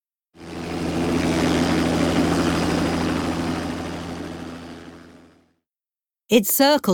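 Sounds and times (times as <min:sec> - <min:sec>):
helicopter rotor and engine flying overhead: 0:00.3 - 0:05.6
speech: 0:06.3 - 0:06.9.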